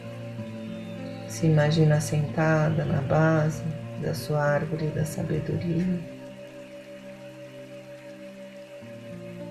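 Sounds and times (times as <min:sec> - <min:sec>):
humming musical drone: 0:00.0 - 0:09.4
speech: 0:01.3 - 0:06.1
steady soft rainfall: 0:02.9 - 0:09.4.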